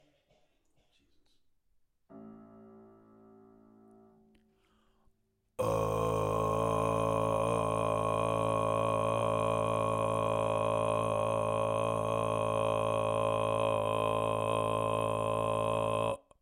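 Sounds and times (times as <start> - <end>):
Tuvan karygyraa throat singing: 5.6 - 16.4.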